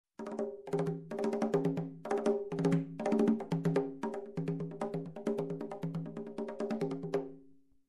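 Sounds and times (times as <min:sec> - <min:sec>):
rhythmic conga groove: 0:00.2 - 0:07.5.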